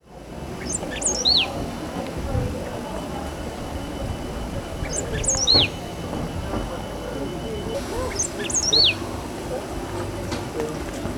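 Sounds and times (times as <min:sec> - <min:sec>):
Embernagra platensis singing: 0:00.4 - 0:10.2.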